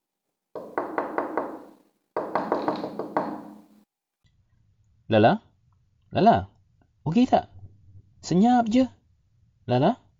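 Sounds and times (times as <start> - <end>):
knocking on a toilet door: 0.6 - 3.8
speech: 5.1 - 5.5, 6.1 - 7.5, 8.2 - 9.0, 9.7 - 10.0.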